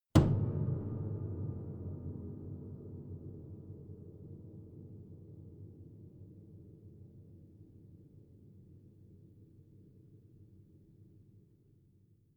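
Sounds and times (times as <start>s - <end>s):
hit on piano body: 0.0s - 4.0s.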